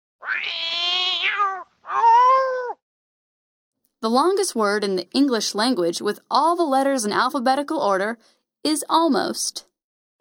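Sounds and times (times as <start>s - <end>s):
cat meowing: 0.2s - 2.8s
speech: 4.0s - 10.1s.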